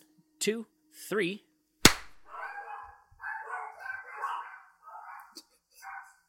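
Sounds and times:
speech: 0.4 - 1.5
hand clap: 1.8 - 2.2
dogs barking: 2.2 - 6.2.

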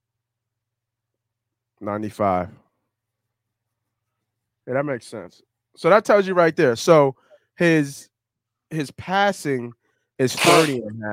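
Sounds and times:
speech: 1.8 - 2.6, 4.7 - 8.1, 8.7 - 11.1
loud sneeze with harsh breathy blast: 10.2 - 10.8.

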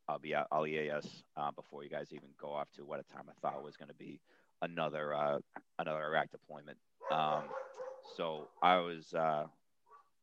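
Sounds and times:
speech: 0.1 - 9.6
dog barking: 3.4 - 3.7, 7.0 - 8.8.

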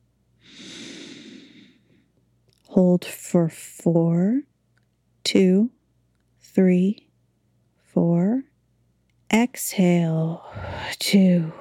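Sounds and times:
slow deep inhale through the nose: 0.4 - 2.0
speech: 2.8 - 4.5, 5.3 - 5.8, 6.4 - 7.0, 8.0 - 8.5, 9.3 - 11.5.

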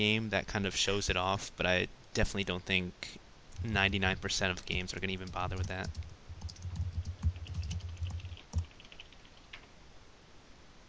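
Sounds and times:
speech: 0.0 - 6.1
typing on a computer keyboard: 4.6 - 9.7.

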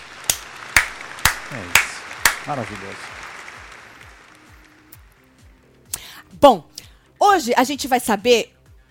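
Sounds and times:
studio audience clapping: 0.0 - 5.8
speech: 1.5 - 3.2, 6.4 - 8.5.

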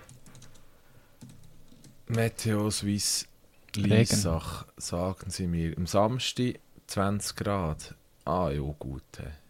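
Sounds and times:
plastic computer keyboard typing: 0.0 - 2.3
speech: 2.1 - 9.4.

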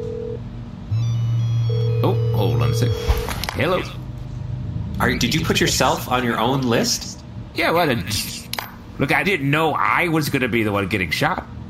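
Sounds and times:
outgoing phone call electronic ringing tone: 0.0 - 3.3
speech: 2.0 - 2.2, 2.8 - 4.0, 5.0 - 8.4, 9.0 - 11.6.

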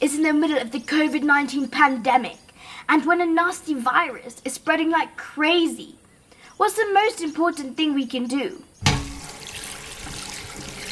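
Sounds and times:
speech: 0.0 - 6.0, 6.6 - 8.7
water running from a tap into a sink: 8.8 - 10.8.

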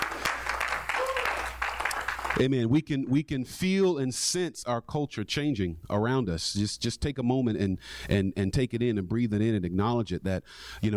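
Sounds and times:
congregation applauding: 0.0 - 2.4
speech: 2.4 - 10.9.

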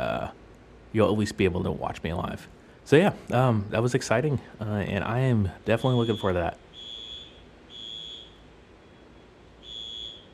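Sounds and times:
speech: 0.9 - 6.6
fire alarm blaring high piercing tones: 5.7 - 10.3.

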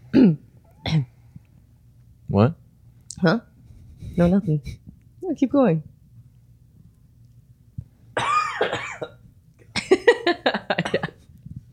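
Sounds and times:
person coughing with a raspy wheeze: 0.1 - 1.1, 8.2 - 9.2, 10.8 - 11.2
speech: 2.4 - 2.6, 3.2 - 3.5, 4.2 - 5.9.

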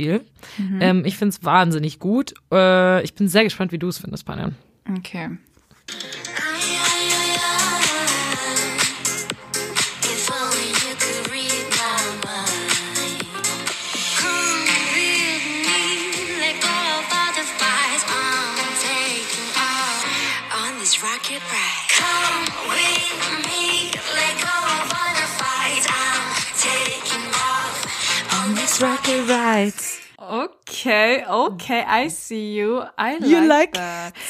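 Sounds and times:
speech: 0.0 - 6.2, 28.8 - 34.2
K-pop song with sung vocals and full-band production: 5.9 - 30.4, 33.0 - 34.2.

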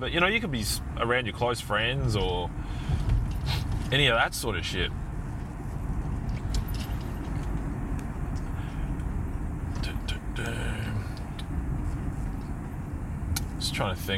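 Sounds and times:
speech: 0.0 - 2.8, 3.9 - 5.0, 13.8 - 14.1
car engine and road rumble inside a moving car merging into traffic: 0.0 - 14.1.

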